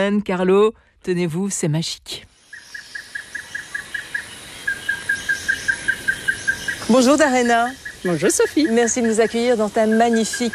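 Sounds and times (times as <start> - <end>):
speech: 0.0 - 2.3, 6.9 - 10.5
small bird repeating a short high chirping note: 2.2 - 10.5.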